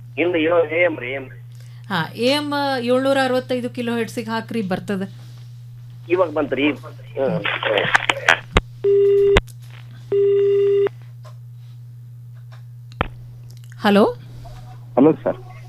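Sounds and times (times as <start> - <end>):
speech: 0.2 - 5.2, 6.1 - 8.4, 13.8 - 14.2, 15.0 - 15.5
telephone line ringing as a listener calls into a farm radio phone-in: 10.1 - 10.9.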